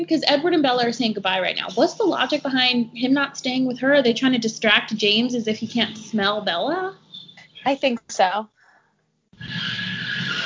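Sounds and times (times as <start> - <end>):
speech: 0.0 - 7.0, 7.6 - 8.6
tires screeching as two cars drive away: 9.4 - 10.4.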